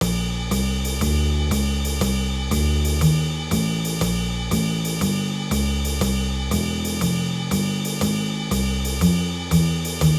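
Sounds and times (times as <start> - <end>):
jazz swing drum kit: 0.0 - 10.1.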